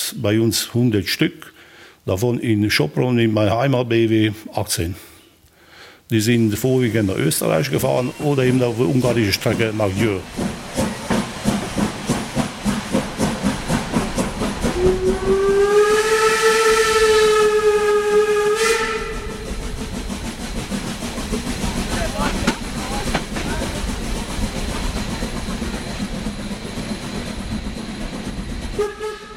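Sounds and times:
speech: 0.1 - 5.1, 6.1 - 10.8
Class 52 steam locomotive chuffing and hissing: 6.4 - 29.3
Class 52 steam locomotive whistle: 14.7 - 19.5, 28.8 - 29.3.

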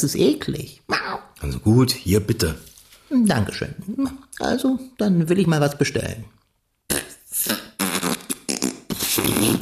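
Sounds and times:
speech: 0.0 - 6.4, 9.4 - 9.5
person blowing raspberries imitating farts: 6.9 - 9.5.

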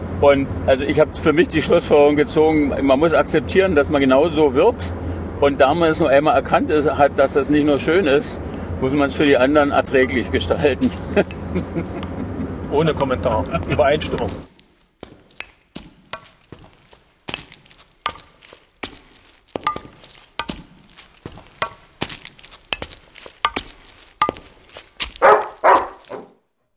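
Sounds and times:
speech: 0.2 - 12.0, 12.7 - 14.5
laughter: 10.7 - 14.3
seven-year-old Labrador barking at an old mill in Mörsdorf: 25.2 - 26.4.

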